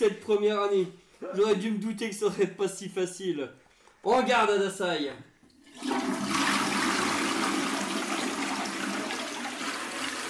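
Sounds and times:
speech: 0.0 - 6.1
toilet flushing: 5.4 - 10.2.

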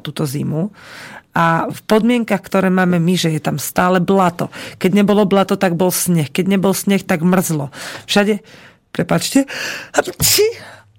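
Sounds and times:
speech: 0.0 - 10.8
sneeze: 10.0 - 10.7.

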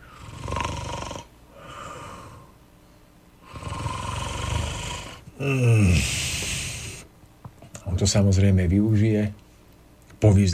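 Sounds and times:
sleeping person snoring softly: 0.0 - 2.5, 3.4 - 7.1
speech: 5.4 - 6.3, 8.0 - 9.4, 10.2 - 10.5.

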